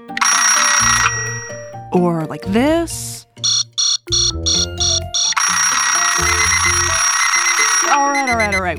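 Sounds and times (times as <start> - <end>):
alarm clock ringing: 0.1 - 1.7, 3.4 - 8.7
speech: 1.9 - 3.5.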